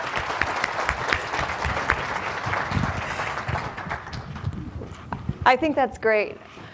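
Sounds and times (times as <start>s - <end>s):
audience applause: 0.0s - 4.6s
speech: 5.5s - 6.6s.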